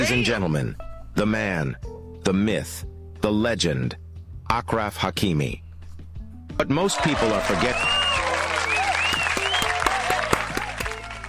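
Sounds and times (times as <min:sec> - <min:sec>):
speech: 0:00.0 - 0:05.6, 0:06.6 - 0:08.0
voices cheering: 0:06.8 - 0:11.2
large crowd applauding: 0:06.9 - 0:11.2
whistles: 0:07.7 - 0:09.9.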